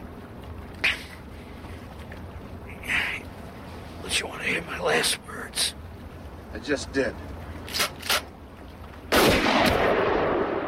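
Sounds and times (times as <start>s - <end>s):
speech: 4.2s - 5.8s, 6.6s - 7.9s
rifle gunshots: 9.1s - 10.6s.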